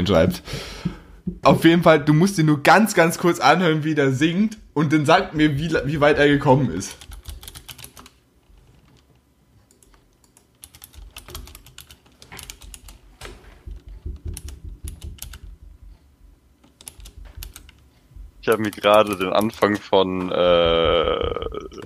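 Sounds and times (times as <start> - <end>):
speech: 0.0 - 0.8, 1.4 - 7.1, 18.5 - 21.8
typing on a computer keyboard: 6.9 - 8.2, 9.7 - 13.0, 13.7 - 15.6, 16.6 - 17.8, 18.5 - 19.8.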